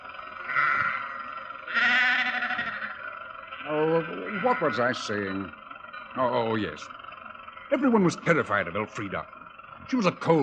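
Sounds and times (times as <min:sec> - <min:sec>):
sheep bleating on a road: 0:00.4 - 0:05.6
speech: 0:03.7 - 0:05.6, 0:06.2 - 0:07.0, 0:07.7 - 0:10.4.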